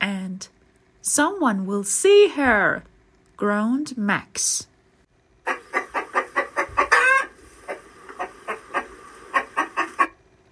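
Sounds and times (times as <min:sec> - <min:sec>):
speech: 0:00.4 - 0:04.7
chicken chased by children across a park clucking: 0:05.5 - 0:10.2.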